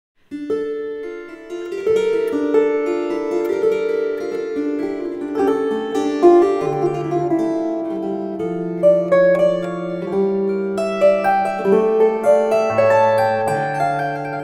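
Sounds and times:
kantele: 0.3 - 14.4.

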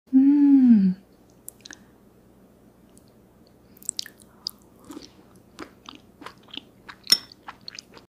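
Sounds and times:
person eating soup: 1.4 - 1.9, 3.8 - 8.1.

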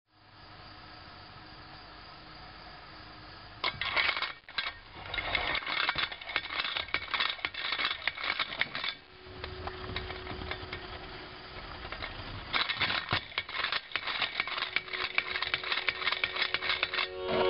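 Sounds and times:
spinning top: 3.6 - 17.4.

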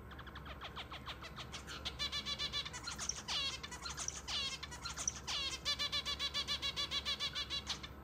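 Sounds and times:
Java sparrow calling: 0.1 - 7.9.

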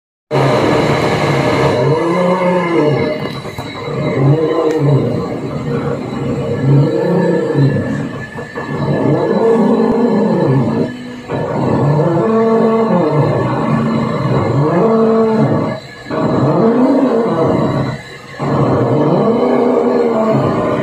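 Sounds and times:
ferris wheel: 0.3 - 20.8.

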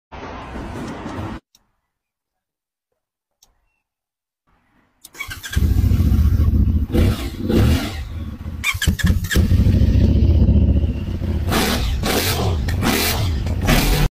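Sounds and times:
CF 250 motorcycle engine: 5.2 - 14.0.

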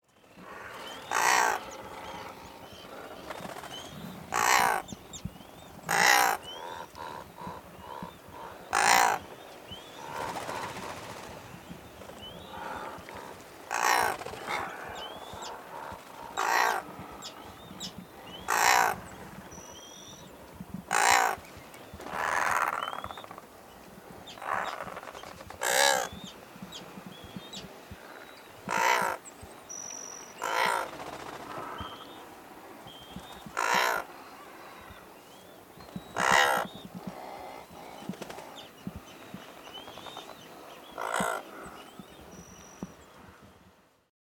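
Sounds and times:
razorbill calling: 0.4 - 3.2, 4.0 - 5.2, 5.8 - 10.7, 12.4 - 23.4, 25.6 - 29.2, 29.8 - 30.9, 33.0 - 39.4.

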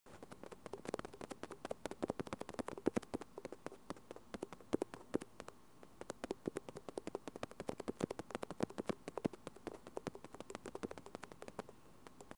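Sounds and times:
tapping on a microphone for ASMR: 0.2 - 12.3.

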